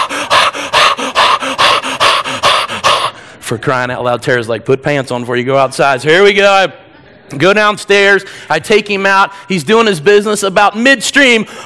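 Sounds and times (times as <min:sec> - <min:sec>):
dog panting: 0:00.0 - 0:03.2
speech: 0:03.5 - 0:11.6.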